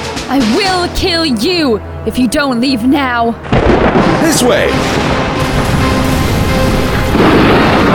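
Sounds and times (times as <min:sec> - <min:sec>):
speech: 0:00.3 - 0:05.5
buildings being destroyed, crashing and rumbling: 0:03.5 - 0:07.9.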